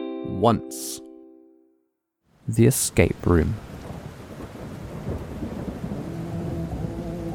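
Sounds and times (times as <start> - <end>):
speech: 0.4 - 1.1, 2.5 - 3.8
heavy rain pouring: 2.4 - 7.3
deep rumble of thunder: 3.6 - 7.3.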